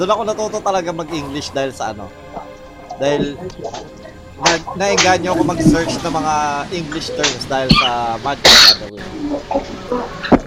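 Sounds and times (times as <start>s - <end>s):
speech: 0.0s - 2.2s, 3.0s - 10.3s
quiet indistinct vocal murmuring: 1.0s - 10.4s
person sneezing: 8.5s - 8.8s.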